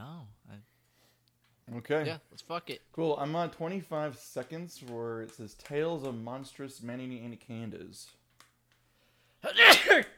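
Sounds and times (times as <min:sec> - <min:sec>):
speech: 0:01.8 - 0:08.2
loud sneeze: 0:09.4 - 0:10.1.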